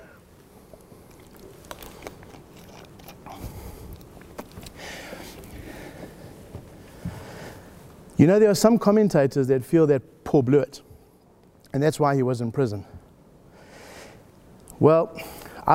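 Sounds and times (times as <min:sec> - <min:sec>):
low steady hiss: 0:00.0 - 0:15.7
person taking a quick sip of water with slurps and a swallow: 0:00.4 - 0:06.4
speech: 0:08.2 - 0:10.9, 0:11.7 - 0:12.9, 0:14.8 - 0:15.7.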